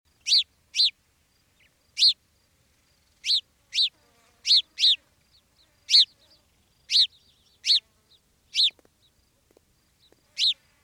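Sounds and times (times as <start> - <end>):
house sparrow Passer domesticus chirping: 0.2 - 1.0, 1.6 - 2.2, 3.0 - 9.2, 10.0 - 10.6.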